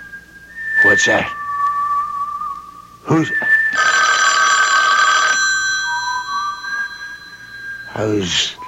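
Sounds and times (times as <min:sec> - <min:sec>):
speech: 0:00.8 - 0:01.4, 0:03.1 - 0:03.9, 0:07.9 - 0:08.6
telephone bell ringing: 0:03.7 - 0:08.2.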